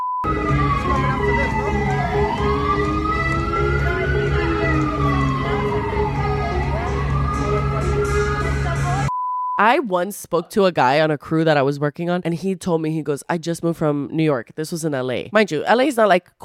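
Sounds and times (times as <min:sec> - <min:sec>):
ambulance siren wailing: 0:00.2 - 0:09.1
steady low rumble of street traffic: 0:00.3 - 0:09.1
speech: 0:09.6 - 0:16.4.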